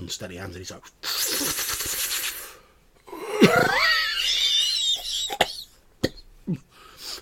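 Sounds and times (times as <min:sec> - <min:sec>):
speech: 0:00.1 - 0:02.0, 0:03.4 - 0:03.8
voice acting out a man coughing while smoking a cigarette: 0:03.2 - 0:03.9, 0:05.1 - 0:06.6.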